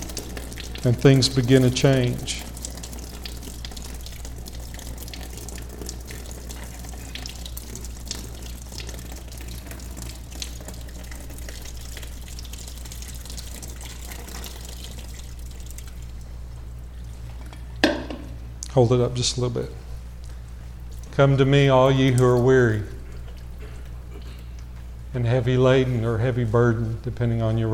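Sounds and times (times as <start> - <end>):
water pouring into a container: 0.0 - 16.3
speech: 0.8 - 2.5, 18.8 - 19.9, 21.2 - 23.0, 25.2 - 27.7.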